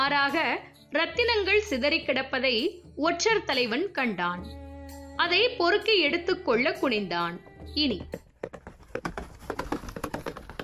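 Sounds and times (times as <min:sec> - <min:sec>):
speech: 0:00.0 - 0:04.6, 0:05.2 - 0:09.2
hoofbeats of four or five horses approaching: 0:07.8 - 0:10.6.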